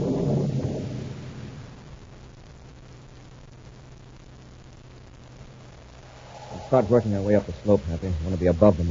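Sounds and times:
distant thunder rumbling: 0.0s - 1.9s, 5.9s - 8.8s
speech: 6.7s - 8.8s.

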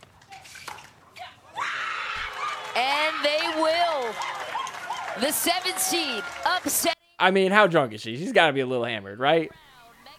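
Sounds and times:
woman screaming at a game: 1.5s - 6.6s
speech: 5.2s - 9.6s.

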